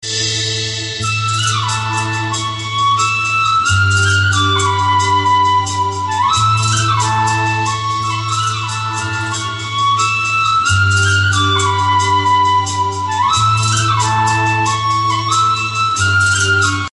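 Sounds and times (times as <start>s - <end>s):
Gujarati folk garba flute melody: 0.0s - 16.9s.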